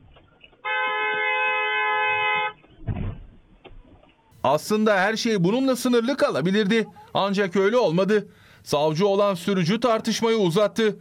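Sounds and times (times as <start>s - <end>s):
quieter road noise: 0.0s - 11.0s
car horn blast at a traffic junction: 0.6s - 2.6s
brief rumbling thump: 2.7s - 4.0s
speech: 4.4s - 11.0s.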